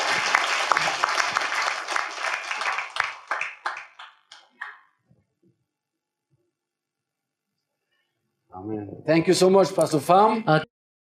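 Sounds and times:
crowd applauding warmly: 0.0s - 4.9s
speech: 8.6s - 10.7s.

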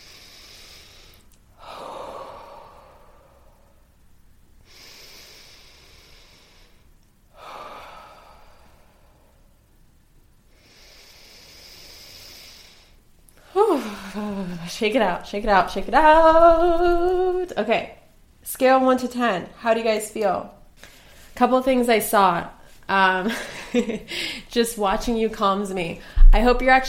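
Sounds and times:
deep breaths: 0.0s - 4.0s, 4.6s - 9.6s, 10.5s - 14.8s, 24.1s - 24.5s
speech: 14.7s - 18.0s, 18.6s - 20.6s, 21.4s - 26.8s.

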